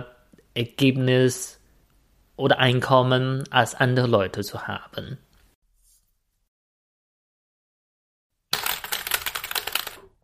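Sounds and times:
speech: 0.6 - 1.6, 2.4 - 5.2
typing on recently bought mechanical keyboard: 8.5 - 10.1.

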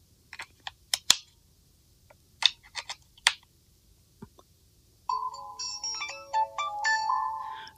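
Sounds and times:
plastic clicks and snaps of battery insertion: 0.3 - 1.3, 2.4 - 3.5
cordless phone electronic startup melody: 5.1 - 7.7.

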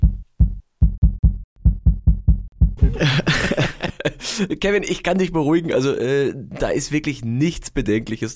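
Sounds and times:
heartbeat through a microphone held against a person's neck artery: 0.0 - 3.0
laughter: 2.8 - 4.6
speech: 3.0 - 3.3, 4.4 - 8.3.

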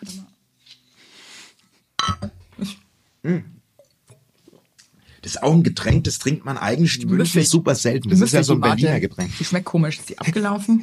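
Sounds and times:
glasses clinking together in a toast: 2.0 - 2.4
speech: 2.6 - 3.6, 5.3 - 10.8.

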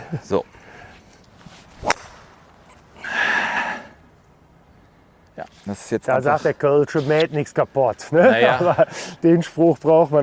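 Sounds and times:
faint noise: 0.0 - 10.2
speech: 0.1 - 0.6, 5.4 - 10.2
golf club swing at the tee: 0.8 - 3.3.

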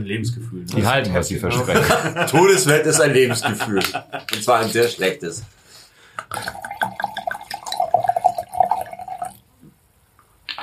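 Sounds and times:
speech: 0.0 - 5.6, 6.2 - 6.7
laughter: 1.5 - 5.0
Pinot Grigio wine pouring into a glass: 6.4 - 9.4.

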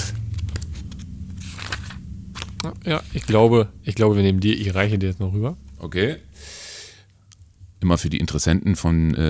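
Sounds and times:
book pages flipping: 0.0 - 3.4
low hum: 0.0 - 9.2
speech: 2.6 - 6.6, 7.8 - 9.2.

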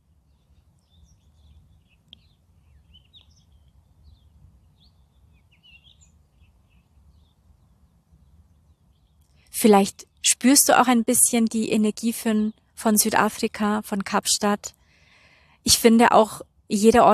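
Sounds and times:
birds chirping and singing outdoors: 0.3 - 7.4
speech: 9.6 - 14.8, 15.6 - 17.1.

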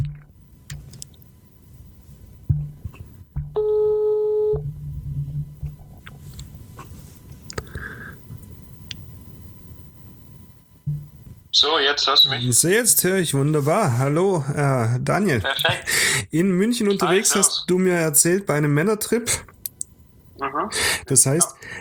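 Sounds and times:
low constant hum: 0.0 - 21.7
telephone ringback tone while a call is being placed: 3.6 - 4.6
speech: 11.6 - 19.5, 20.6 - 21.7
faint clicks: 19.5 - 20.0.

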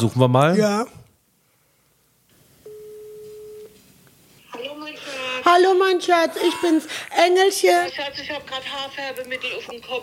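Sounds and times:
speech: 0.0 - 1.0, 5.4 - 10.0
telephone ringback tone as a call is placed: 2.6 - 3.8.

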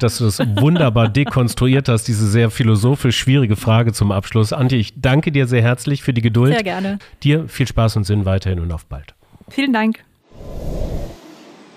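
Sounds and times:
laughter: 0.0 - 1.8
speech: 0.0 - 11.0
low rumbling whoosh at an outdoor train station: 10.3 - 11.7.

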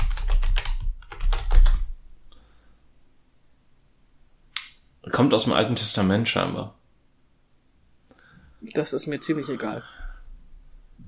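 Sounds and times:
rapid keystrokes on a computer keyboard: 0.0 - 1.9
speech: 5.1 - 6.8, 8.8 - 10.0.

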